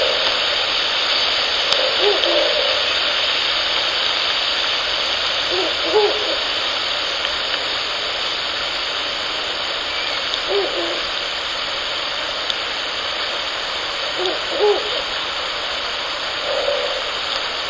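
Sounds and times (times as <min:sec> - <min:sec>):
constant heavy hiss: 0:00.0 - 0:17.6
male and female Ural owl giving low hooting phrases: 0:01.6 - 0:03.1, 0:05.4 - 0:06.6, 0:09.9 - 0:11.2, 0:14.1 - 0:15.2, 0:16.4 - 0:17.2.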